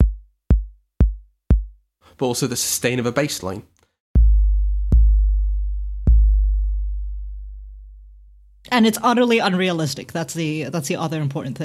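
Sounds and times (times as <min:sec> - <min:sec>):
drum machine kick drum with long decay: 0:00.0 - 0:01.8, 0:04.2 - 0:08.5
speech: 0:02.2 - 0:03.8, 0:08.8 - 0:11.6.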